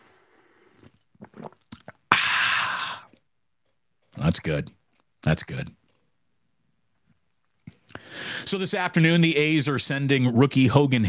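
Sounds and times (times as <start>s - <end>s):
person sipping a drink with wet mouth clicks and gulps: 0.3s - 3.3s
loud breathy rush of air: 2.1s - 3.1s
speech: 4.3s - 5.8s, 8.5s - 11.0s.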